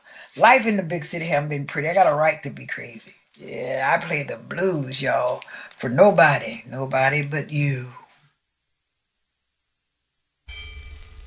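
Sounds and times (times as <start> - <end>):
speech: 0.4 - 8.0
church bell ringing at 12 o'clock in the daytime: 10.5 - 11.2.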